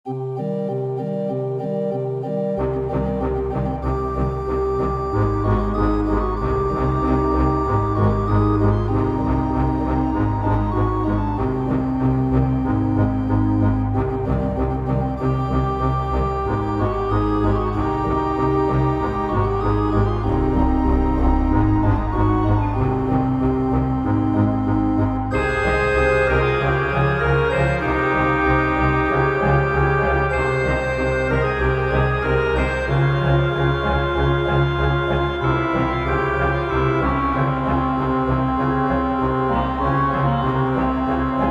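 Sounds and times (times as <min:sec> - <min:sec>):
Egyptian Arabic music played with an organ synthesizer: 0:00.1 - 0:41.5.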